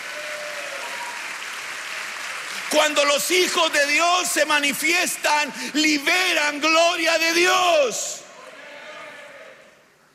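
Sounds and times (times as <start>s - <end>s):
crowd clapping in sustained dense applause: 0.0s - 7.6s
speech: 2.7s - 8.1s.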